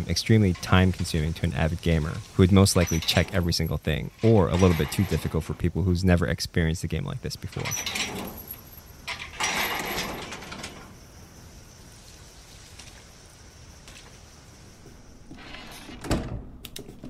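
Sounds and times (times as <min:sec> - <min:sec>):
speech: 0:00.0 - 0:08.4
door sliding and grinding shut with a heavy thud: 0:02.2 - 0:05.5, 0:07.4 - 0:11.0, 0:15.3 - 0:16.6.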